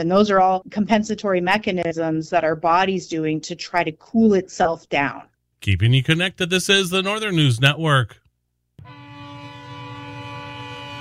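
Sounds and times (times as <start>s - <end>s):
speech: 0.0s - 8.2s
freight train horn blasting: 8.8s - 10.9s.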